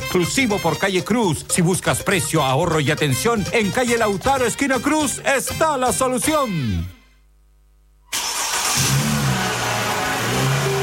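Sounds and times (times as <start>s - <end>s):
speech: 0.1s - 7.0s
car engine revving: 8.2s - 10.8s.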